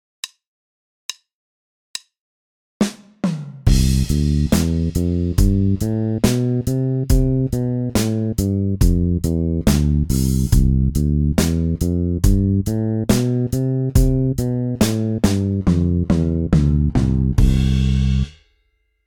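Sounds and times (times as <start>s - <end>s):
bass playing scales over one octave as exercises: 3.7s - 18.3s.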